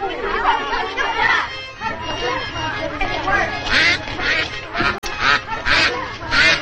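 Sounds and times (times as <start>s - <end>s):
duck quacking: 0.0s - 6.6s
laughter: 0.0s - 6.6s.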